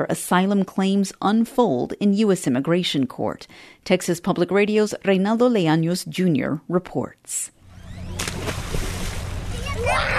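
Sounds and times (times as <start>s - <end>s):
speech: 0.0s - 7.6s
children splashing in murky river water jumping from a makeshift dock: 8.2s - 10.1s.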